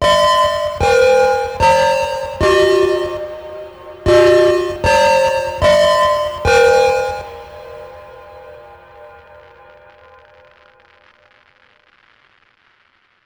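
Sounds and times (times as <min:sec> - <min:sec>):
horror chime: 0:00.0 - 0:10.4.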